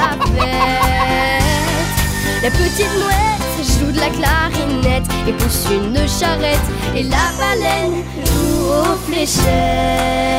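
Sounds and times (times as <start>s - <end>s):
hen clucking in a children's farm-animal song: 0.0s - 3.0s
steady sustained musical backing of a children's farm-animal song: 0.0s - 10.3s
speech: 2.4s - 10.3s.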